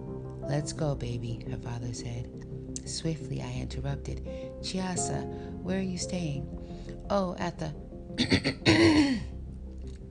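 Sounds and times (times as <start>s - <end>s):
speech: 0.5s - 9.3s
man clearing his throat: 8.2s - 9.3s.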